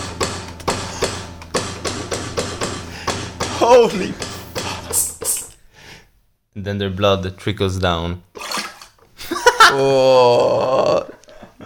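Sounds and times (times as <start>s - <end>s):
sharp hammer blows: 0.0s - 5.6s
speech: 3.7s - 4.3s, 6.6s - 8.4s, 9.7s - 11.0s.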